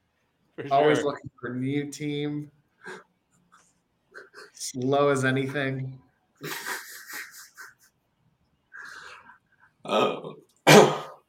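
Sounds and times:
speech: 0.6 - 3.0, 4.4 - 6.6, 9.9 - 10.4
laughter: 4.1 - 4.6, 6.4 - 8.0
throat-clearing: 9.9 - 11.2
throaty coughing fit: 10.6 - 11.2.

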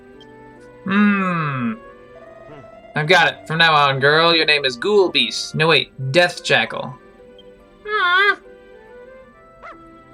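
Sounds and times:
speech: 0.8 - 1.9, 3.0 - 7.0
female dog whimpering: 2.2 - 2.9
female dog yipping: 9.6 - 9.8.

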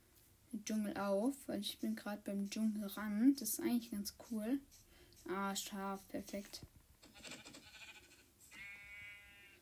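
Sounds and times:
speech: 0.7 - 7.4
sheep bleating: 7.1 - 9.6.

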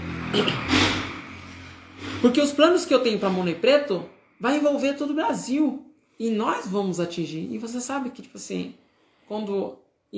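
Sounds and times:
motorcycle engine revving as it passes: 0.0 - 3.6
steady traffic hum: 0.0 - 7.0
speech: 0.3 - 0.8, 2.2 - 10.1.

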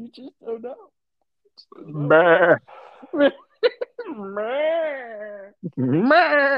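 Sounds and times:
speech: 0.0 - 1.0, 1.6 - 6.5
sheep bleating: 1.9 - 2.8.

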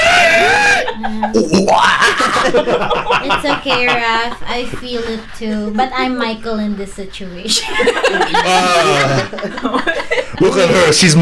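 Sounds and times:
loud high-pitched scream: 0.0 - 2.4
laughter: 0.0 - 6.0, 7.5 - 11.2
speech: 1.2 - 11.2.

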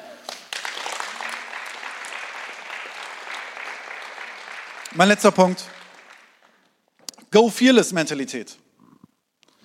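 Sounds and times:
crowd applauding: 0.2 - 6.8
speech: 4.9 - 5.8, 7.3 - 8.6.

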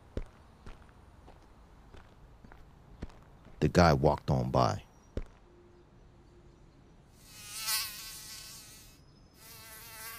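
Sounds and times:
speech: 3.6 - 4.9
mosquito whining: 7.2 - 10.1.

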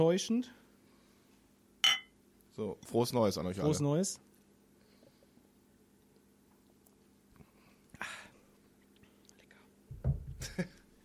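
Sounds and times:
speech: 0.0 - 0.6, 2.6 - 4.3
glasses clinking in a New Year's toast: 1.8 - 2.2.

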